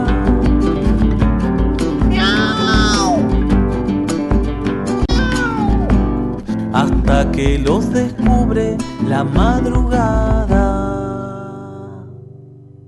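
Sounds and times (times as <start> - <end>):
busy music with a rhythmic pulse: 0.0 - 11.3
cat meowing with drawn-out wavering cries: 2.1 - 3.3, 5.1 - 6.0
speech: 7.4 - 10.9.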